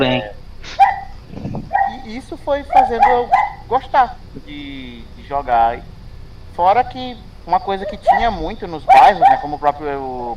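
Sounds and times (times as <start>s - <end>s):
speech: 0.0s - 0.8s, 2.1s - 5.9s, 6.6s - 10.3s
dog barking in short sharp yips and whimpering: 0.8s - 2.1s, 2.7s - 3.7s, 7.6s - 9.6s.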